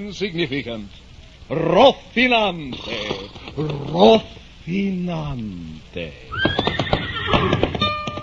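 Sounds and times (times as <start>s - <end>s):
speech: 0.0s - 6.7s, 7.3s - 7.8s
horse neighing: 6.3s - 7.9s.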